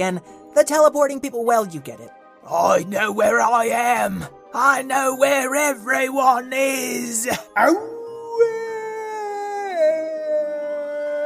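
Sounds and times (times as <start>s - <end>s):
speech: 0.0s - 8.6s
werewolf howling: 9.2s - 11.2s.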